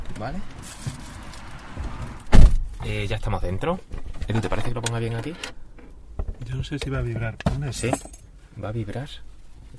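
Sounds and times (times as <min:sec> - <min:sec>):
speech: 0:00.2 - 0:01.0, 0:02.8 - 0:05.6, 0:06.5 - 0:09.3
passenger door of an electric car shutting: 0:01.7 - 0:02.8.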